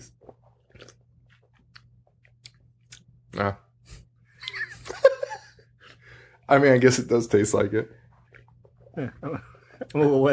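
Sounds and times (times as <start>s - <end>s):
people chewing and crunching a sweet sugary snack: 0.1s - 3.2s
speech: 3.4s - 3.6s, 6.5s - 8.0s, 9.0s - 10.3s.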